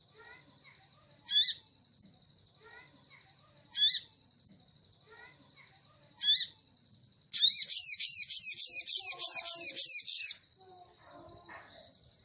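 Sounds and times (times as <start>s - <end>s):
crimson sunbird singing: 1.2s - 1.8s, 3.7s - 4.2s, 6.2s - 10.5s.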